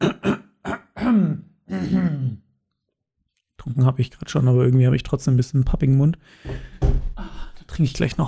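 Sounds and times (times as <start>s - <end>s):
theatrical exaggerated throat clearing: 0.0s - 2.5s
speech: 3.8s - 6.9s, 7.7s - 8.2s.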